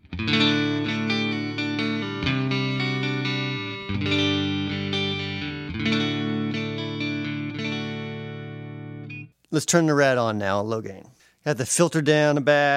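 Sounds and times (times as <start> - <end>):
clean electric guitar chords on the neck pickup through a Fender Twin Reverb reissue amp: 0.0 - 9.3
speech: 9.6 - 12.7.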